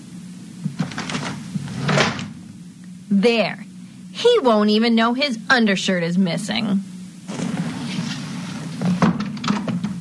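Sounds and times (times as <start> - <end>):
dresser underwear drawer sliding and knocking shut: 0.8 - 2.4, 7.3 - 10.0
speech: 3.2 - 6.9.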